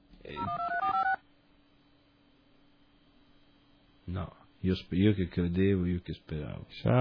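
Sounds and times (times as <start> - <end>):
telephone keypad dialing tones: 0.4 - 1.2
speech: 4.2 - 6.9.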